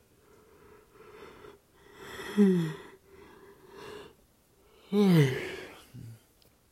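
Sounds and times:
quiet breathing: 0.0s - 6.4s
person yawning: 2.2s - 3.0s, 4.8s - 6.2s.

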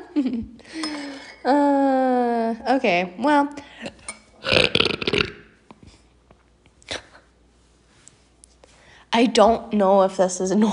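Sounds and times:
speech: 0.2s - 0.8s, 1.4s - 1.8s, 2.8s - 3.7s, 9.2s - 10.7s
person burping: 3.9s - 5.6s.

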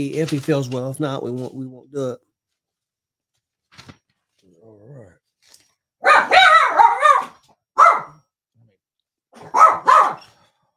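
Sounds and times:
speech: 0.0s - 2.3s
chihuahuas barking in high-pitched yaps: 6.0s - 8.2s, 9.4s - 10.4s.

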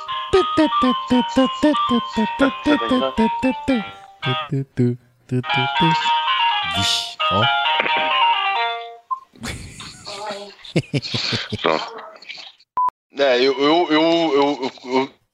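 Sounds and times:
phone ringtone electronic melody: 0.2s - 4.5s
speech: 0.3s - 8.2s, 10.7s - 12.1s, 13.1s - 15.2s
laughter: 9.4s - 12.0s.

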